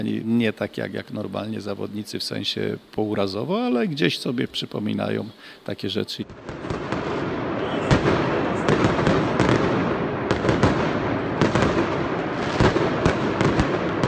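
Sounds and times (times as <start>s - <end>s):
speech: 0.0s - 6.8s
fireworks exploding at a football stadium: 6.3s - 14.0s
roaring crowd-like wash of noise: 6.8s - 13.5s.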